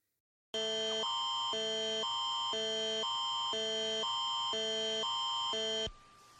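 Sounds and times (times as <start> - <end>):
Amber Alert emergency alarm tone from a mobile phone: 0.6 - 5.9.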